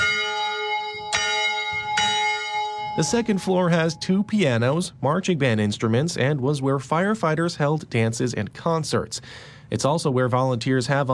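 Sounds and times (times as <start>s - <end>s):
old fire station bell rung by pulling a rope: 0.0s - 4.8s
speech: 3.0s - 11.1s.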